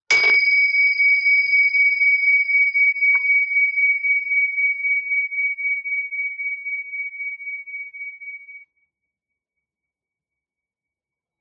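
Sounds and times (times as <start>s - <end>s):
meditation bell ringing with a clear high tone: 0.1s - 8.6s.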